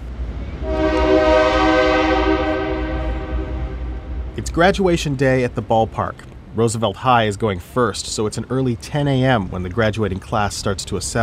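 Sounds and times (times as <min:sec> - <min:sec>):
train engine rumble: 0:00.0 - 0:11.2
train engine horn at rail yards next to a baseball stadium: 0:00.6 - 0:04.7
speech: 0:04.5 - 0:11.2.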